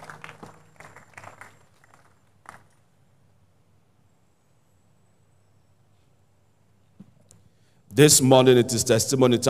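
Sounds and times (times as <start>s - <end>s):
audience applauding after prayer: 0.0s - 2.7s
speech: 8.0s - 9.4s.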